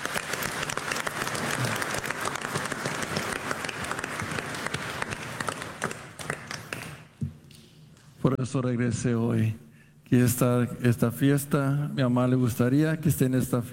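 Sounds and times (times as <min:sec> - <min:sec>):
audience applauding in church: 0:00.0 - 0:07.2
speech: 0:08.4 - 0:13.7.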